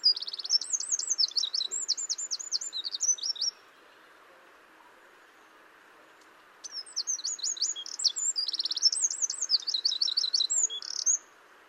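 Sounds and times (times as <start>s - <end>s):
Eurasian wren Troglodytes troglodytes singing: 0.0s - 4.2s, 6.6s - 11.3s.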